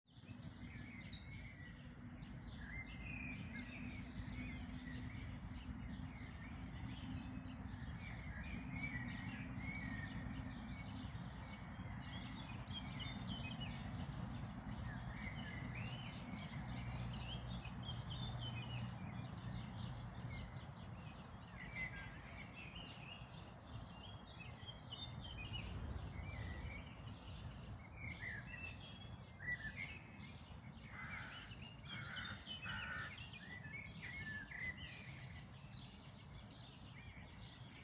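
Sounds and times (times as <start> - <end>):
dawn chorus of birds singing before sunrise: 0.1 - 37.8.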